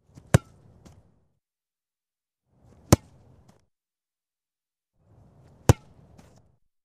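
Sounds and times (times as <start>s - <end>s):
football goalkeeper catching the ball: 0.1s - 1.0s, 2.8s - 3.2s, 5.6s - 6.0s.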